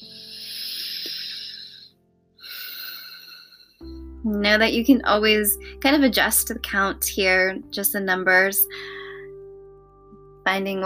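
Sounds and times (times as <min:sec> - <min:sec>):
slow breathing in and out: 0:00.0 - 0:04.2, 0:08.7 - 0:09.4
speech: 0:04.2 - 0:08.9, 0:10.5 - 0:10.8.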